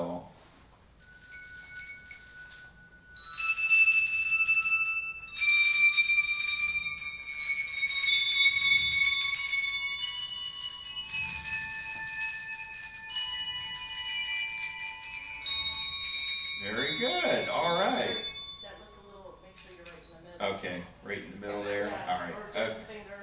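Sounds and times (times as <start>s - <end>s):
handbells ringing during a practice: 1.0s - 20.0s
voices: 16.6s - 23.2s.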